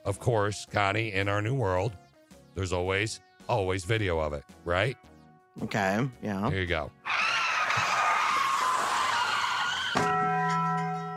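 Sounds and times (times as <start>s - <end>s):
speech: 0.1s - 2.0s, 2.6s - 7.0s
car tires screeching: 7.1s - 10.0s.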